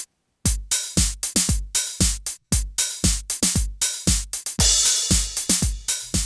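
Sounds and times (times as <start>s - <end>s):
909 drum machine beat in a mono mix: 0.0s - 6.2s.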